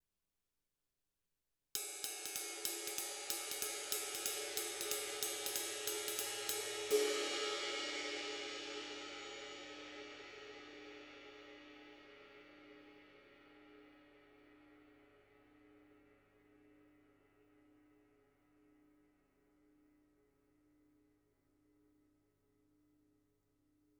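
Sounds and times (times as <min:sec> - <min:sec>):
jazz ride cymbal: 0:01.8 - 0:12.8.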